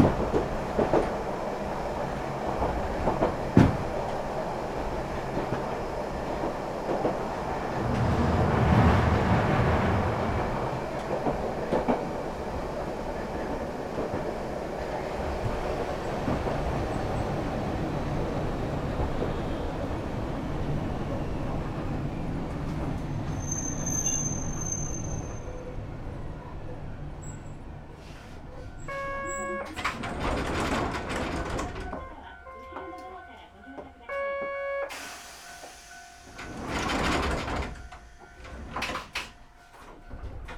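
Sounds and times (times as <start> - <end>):
tram rumbling on rails: 0.0 - 40.5
tram wheels squealing: 23.0 - 25.8.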